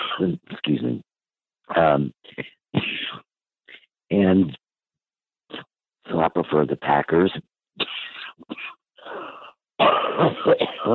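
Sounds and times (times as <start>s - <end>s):
person coughing and choking from pollen allergies: 0.0s - 0.4s, 2.3s - 3.3s, 7.8s - 10.9s
speech: 0.2s - 1.1s, 1.7s - 3.0s, 4.1s - 4.6s, 5.5s - 10.9s.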